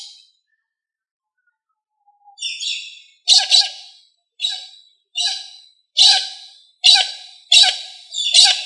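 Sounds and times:
Australorp chicken squawking: 5.2 - 8.6.

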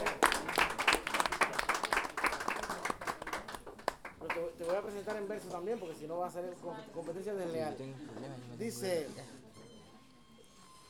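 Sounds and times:
audience applause at a live event of improvised verse and poetry: 0.0 - 5.5
speech: 5.2 - 9.4.

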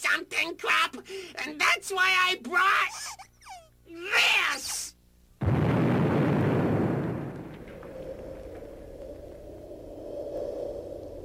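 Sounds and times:
speech: 0.2 - 3.2
nuclear explosion blast: 5.4 - 11.2
low droning rumble with a steady hum: 6.4 - 11.2.

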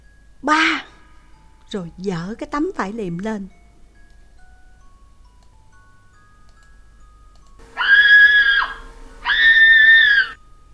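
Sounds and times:
faint steady hum: 0.0 - 10.7
speech: 0.4 - 0.9, 1.7 - 3.6
loud high-pitched screams of terror in a morgue: 7.8 - 10.4.

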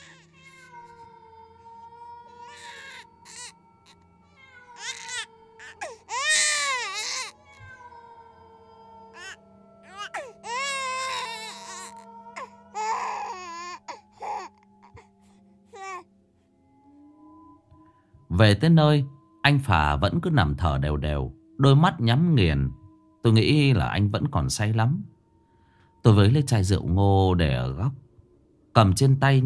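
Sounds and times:
child crying from a ravine: 0.0 - 8.2, 9.1 - 14.5
speech: 18.4 - 25.1, 26.0 - 28.0, 28.8 - 29.4.

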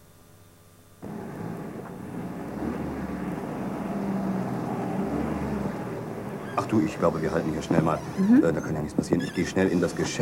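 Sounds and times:
parked car engine running near a shop in town: 1.0 - 8.5
speech: 6.7 - 10.2.

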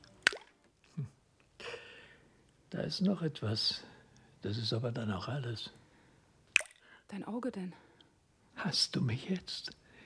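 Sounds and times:
false teeth dropped into a glass of water: 0.2 - 0.6, 6.6 - 6.8
speech: 2.8 - 5.8, 7.1 - 7.8, 8.6 - 9.8.

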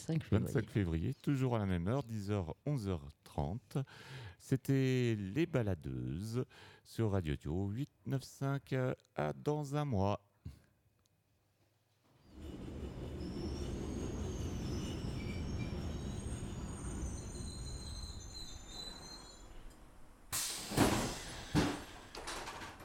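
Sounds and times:
speech: 0.0 - 10.6
thin high train wheel squeals: 12.2 - 22.8
train arriving at a station rumbling: 12.3 - 22.6.

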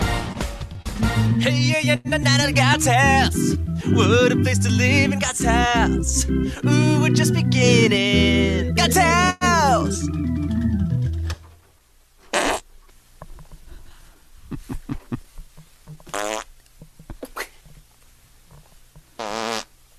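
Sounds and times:
speech: 1.2 - 11.0
fart noises during stepping: 12.3 - 12.7, 16.0 - 16.5, 19.2 - 19.7
footstep taps and thumps: 14.6 - 16.2, 16.8 - 17.9.

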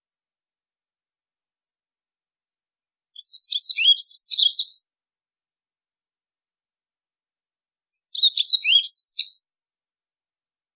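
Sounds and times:
white-throated seedeater song: 3.2 - 4.9, 8.0 - 9.6.

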